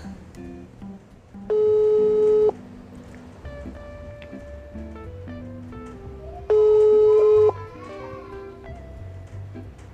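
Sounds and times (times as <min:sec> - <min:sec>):
ringback tone of an unanswered telephone call: 0:01.5 - 0:02.6, 0:06.5 - 0:07.6.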